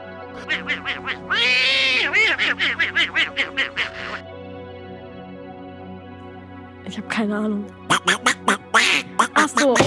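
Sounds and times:
cartoon duck quacking laugh: 0.4s - 4.2s, 7.9s - 9.8s
speech: 0.5s - 4.3s, 6.9s - 9.8s.

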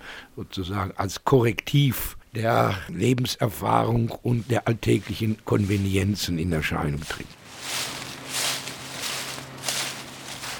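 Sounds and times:
speech: 0.4s - 8.0s
footsteps crunching through dry fallen leaves: 4.2s - 10.5s.

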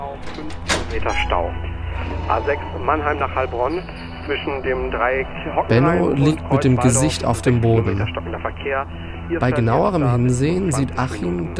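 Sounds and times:
room door in a shared flat creaking open: 0.0s - 2.9s
steady low hum: 0.0s - 11.5s
sharp latch click of a room door in a shared flat: 0.2s - 1.4s
speech: 0.4s - 11.5s.

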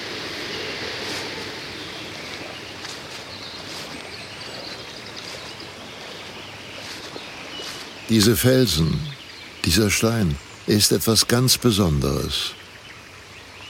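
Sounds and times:
faint chirps of birds or insects: 0.0s - 13.6s
small brook flowing in a gorge: 0.0s - 13.6s
speech: 8.1s - 9.1s, 9.7s - 12.6s.

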